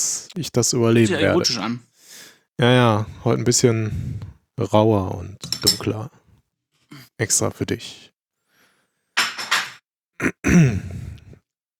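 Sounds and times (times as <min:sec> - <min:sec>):
speech: 0:00.4 - 0:01.9, 0:02.6 - 0:06.2, 0:07.2 - 0:08.1, 0:10.2 - 0:11.0
person clearing their throat: 0:10.2 - 0:11.4.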